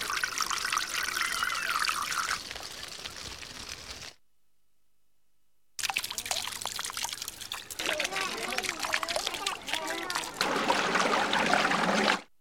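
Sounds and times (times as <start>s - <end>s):
water trickling in a canal: 0.0s - 3.6s, 5.8s - 12.2s.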